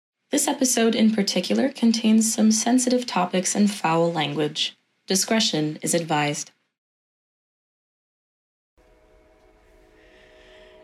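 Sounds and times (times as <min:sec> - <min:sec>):
speech: 0:00.3 - 0:06.6
train horn sounding a steady blaring tone: 0:08.8 - 0:10.8.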